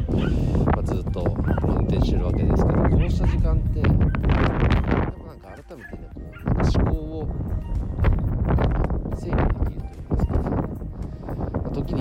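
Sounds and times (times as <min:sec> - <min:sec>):
wind noise: 0:00.0 - 0:12.0
person talking: 0:00.8 - 0:04.0, 0:05.0 - 0:07.4, 0:09.1 - 0:10.8, 0:11.6 - 0:12.0
dog barking and yipping excitedly: 0:01.4 - 0:02.4, 0:03.0 - 0:03.5.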